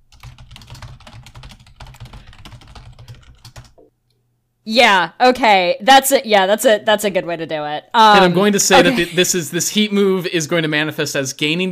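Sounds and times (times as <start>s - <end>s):
rapid typing on a computer keyboard: 0.1s - 3.8s
speech: 4.7s - 11.7s.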